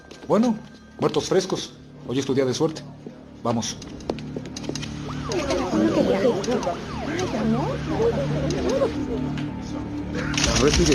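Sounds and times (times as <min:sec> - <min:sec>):
speech: 0:00.3 - 0:04.0, 0:05.8 - 0:10.9
several ambulance sirens wailing as the ambulances arrive: 0:05.0 - 0:09.9.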